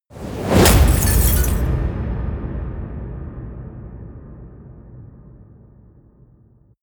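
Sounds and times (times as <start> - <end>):
mirror shattering: 0.6 - 1.7.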